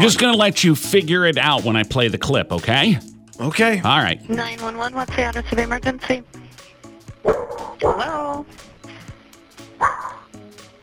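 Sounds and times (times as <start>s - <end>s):
speech: 0.0s - 6.5s, 7.2s - 8.7s
dog yelping over a phone line: 7.2s - 8.0s, 9.8s - 10.4s
dog barking over a muffled phone line on an emergency call: 9.8s - 10.3s.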